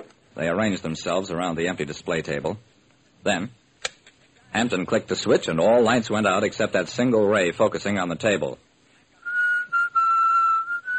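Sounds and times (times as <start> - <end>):
speech: 0.4 - 3.6, 4.5 - 8.7
person whistling a melody: 9.2 - 10.9.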